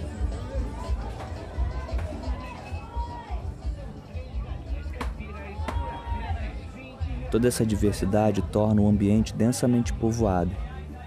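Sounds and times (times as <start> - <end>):
dense crowd chatter at a busy open-air street market: 0.0 - 11.0
speech: 7.3 - 10.7.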